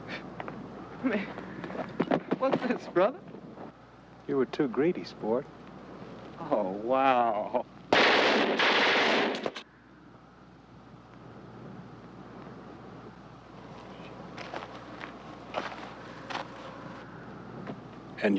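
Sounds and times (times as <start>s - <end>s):
low wind-like noise: 0.0s - 18.3s
speech: 1.0s - 3.3s, 4.3s - 5.6s, 6.4s - 7.6s
faint gunshots: 7.9s - 9.6s
machine-gun burst from guns being test-fired: 7.9s - 9.6s.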